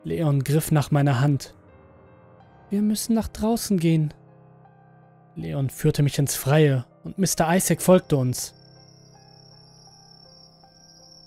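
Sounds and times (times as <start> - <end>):
speech: 0.0 - 1.6, 2.7 - 4.2, 5.4 - 8.6
crickets chirping at night: 7.1 - 11.2.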